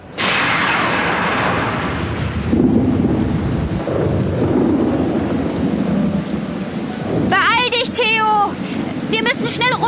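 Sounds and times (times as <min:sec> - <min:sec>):
thunder: 0:00.0 - 0:07.4
heavy rain: 0:00.0 - 0:09.8.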